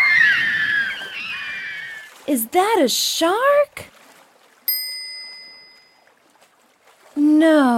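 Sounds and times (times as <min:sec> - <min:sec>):
loud high-pitched scream: 0:00.0 - 0:02.1
speech: 0:02.3 - 0:03.9, 0:07.4 - 0:07.7.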